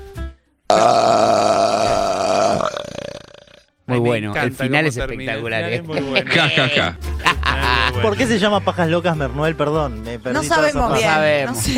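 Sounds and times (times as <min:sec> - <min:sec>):
long loud burp: 0:00.7 - 0:03.8
speech: 0:04.1 - 0:11.7
laughter: 0:05.9 - 0:08.5.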